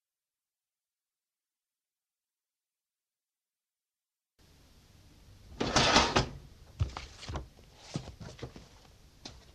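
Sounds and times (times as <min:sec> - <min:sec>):
cabinet drawer sliding open: 0:05.6 - 0:06.4.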